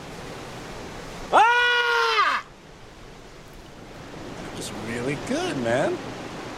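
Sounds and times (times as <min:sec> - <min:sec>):
faint steady outdoor hiss: 0:00.0 - 0:06.5
man yelling on a beach: 0:01.3 - 0:02.5
speech: 0:04.7 - 0:06.2.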